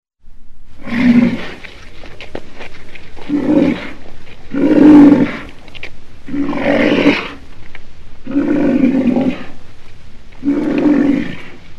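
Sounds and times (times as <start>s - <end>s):
black rhinoceros groaning calls: 3.2s - 5.6s, 6.2s - 7.4s, 8.2s - 9.6s, 10.4s - 11.6s.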